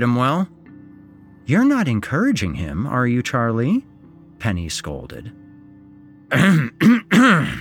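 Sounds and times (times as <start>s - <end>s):
speech: 0.0s - 0.6s, 1.5s - 5.4s, 6.3s - 7.6s
man coughing theatrically: 6.3s - 7.6s.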